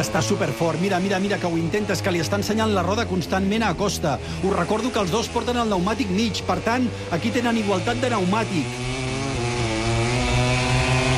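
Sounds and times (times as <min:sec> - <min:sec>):
speech: 0:00.0 - 0:09.0
racing motorcycle engines whining while braking into a corner on a circuit: 0:00.0 - 0:11.1.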